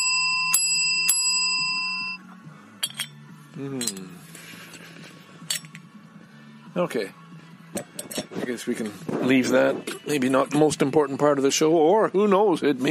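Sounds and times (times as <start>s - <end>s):
small bell struck: 0.0s - 2.2s
speech: 3.6s - 4.4s, 6.8s - 12.8s.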